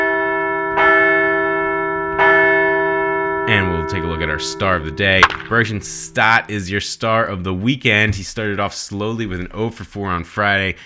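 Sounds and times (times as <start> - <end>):
large bell ringing: 0.0 - 7.1
speech: 3.9 - 10.8.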